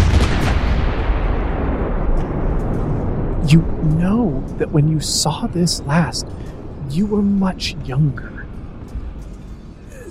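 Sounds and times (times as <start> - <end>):
heavy cannon fire booming in a continuous barrage: 0.0 - 4.6
speech: 3.5 - 8.4.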